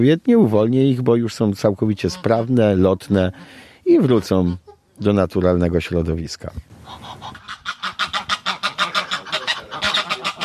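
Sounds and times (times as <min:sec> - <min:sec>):
speech: 0:00.0 - 0:07.4
pair of geese honking in greeting: 0:01.9 - 0:03.6, 0:06.8 - 0:10.4.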